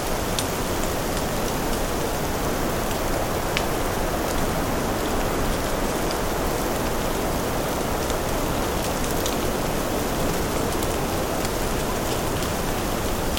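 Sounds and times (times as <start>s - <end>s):
steady rain falling in a forest: 0.0s - 13.3s.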